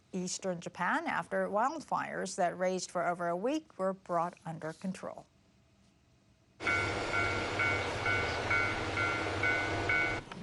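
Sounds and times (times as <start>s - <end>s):
speech: 0.1s - 5.3s
high pulsing ringing tone at a railway station: 6.6s - 10.2s
train rumbling at Otsuchi Station in Iwate Prefecture Japan: 6.6s - 10.4s.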